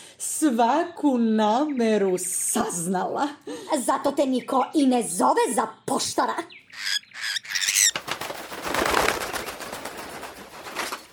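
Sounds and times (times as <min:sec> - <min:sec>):
speech: 0:00.4 - 0:07.0
magpie wings flapping as it lands: 0:07.2 - 0:11.1.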